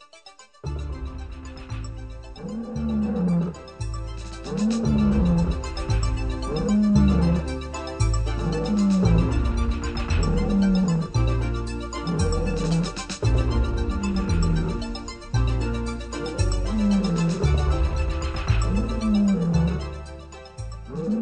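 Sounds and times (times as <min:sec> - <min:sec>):
lions roaring in a lions' den: 0:02.3 - 0:20.2, 0:20.8 - 0:21.1.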